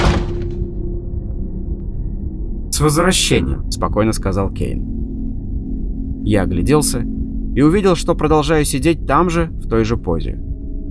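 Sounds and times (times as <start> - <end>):
apartment door slamming shut: 0.0 - 0.8
low hum: 0.0 - 10.8
speech: 2.8 - 5.1, 6.2 - 10.5.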